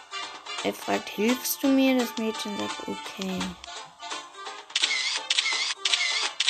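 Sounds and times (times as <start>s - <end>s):
speech: 0.6s - 3.6s
voice mimicking camera shutter clicks: 4.8s - 6.4s.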